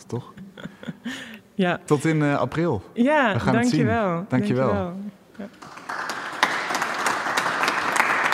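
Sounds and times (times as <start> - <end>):
speech: 0.0 - 0.4, 1.0 - 5.8
audience applause in a church: 5.5 - 8.3.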